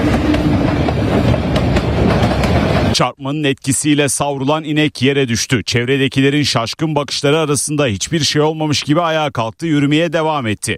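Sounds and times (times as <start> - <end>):
train wheels clacking over rails: 0.0 - 3.0
fast train rumbling on a railway line in India: 0.0 - 3.2
speech: 3.0 - 10.7.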